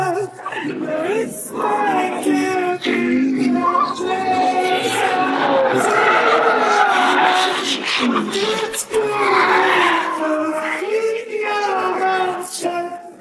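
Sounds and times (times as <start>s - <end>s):
laughter: 0.2s - 12.7s
race car tires squealing under hard braking: 3.4s - 10.4s.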